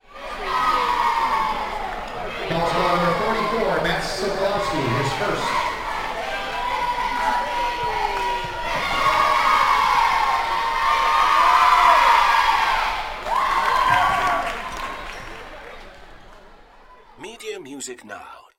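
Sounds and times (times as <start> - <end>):
basketball cheerleaders chanting: 0.1 - 3.7, 4.3 - 15.1
announcer speaking: 17.2 - 18.5.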